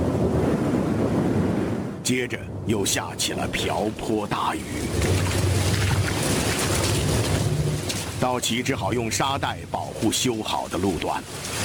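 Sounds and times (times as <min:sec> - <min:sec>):
rushing floodwater of a river swollen by melting snow: 0:00.0 - 0:11.6
speech: 0:02.1 - 0:05.5, 0:08.2 - 0:11.6.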